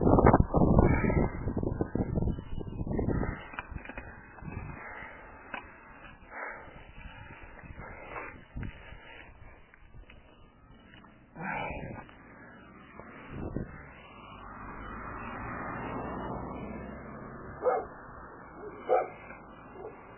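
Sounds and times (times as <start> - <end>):
steady rushing noise: 0.0 - 20.1
dog barking: 17.6 - 18.0, 18.6 - 20.1.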